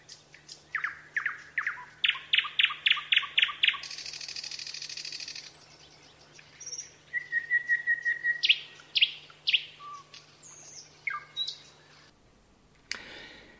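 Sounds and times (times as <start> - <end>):
nightingale singing: 0.0 - 12.2
faint steady hum: 0.0 - 13.5.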